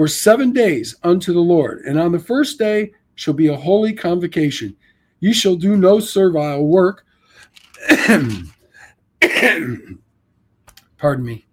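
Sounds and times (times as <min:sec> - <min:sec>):
speech: 0:00.0 - 0:08.6, 0:09.2 - 0:10.0, 0:11.0 - 0:11.5
raspy throaty coughs: 0:07.8 - 0:08.6, 0:09.2 - 0:10.0.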